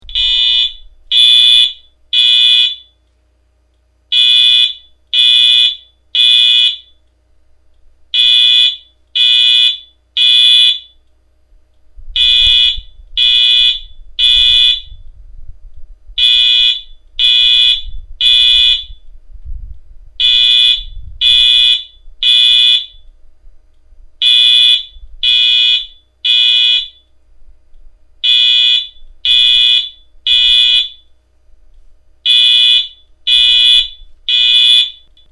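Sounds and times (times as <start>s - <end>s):
Wheelock MT4 115 alarm sounding a code 3 tone: 0.0s - 3.0s, 4.1s - 7.0s, 8.1s - 11.0s, 12.2s - 15.0s, 16.2s - 19.0s, 20.2s - 23.1s, 24.2s - 27.1s, 28.2s - 31.2s, 32.2s - 35.1s.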